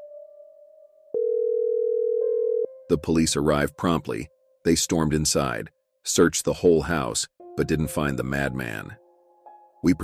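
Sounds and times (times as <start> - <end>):
telephone dial tone: 1.2 - 2.7
speech: 2.9 - 9.0, 9.8 - 10.0.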